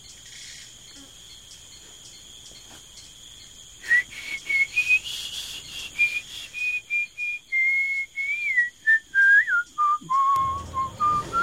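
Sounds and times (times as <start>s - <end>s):
short whistled notes: 3.8s - 11.4s.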